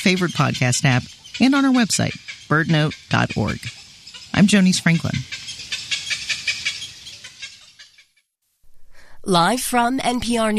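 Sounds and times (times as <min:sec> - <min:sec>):
speech: 0:00.0 - 0:05.5, 0:09.3 - 0:10.5
cattle egret giving harsh croaking clucks: 0:00.0 - 0:07.9.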